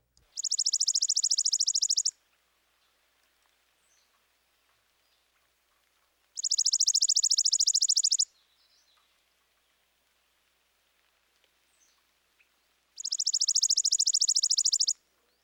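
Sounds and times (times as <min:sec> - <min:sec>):
chipping sparrow dry trill: 0:00.2 - 0:02.2, 0:06.4 - 0:09.1, 0:13.0 - 0:15.4.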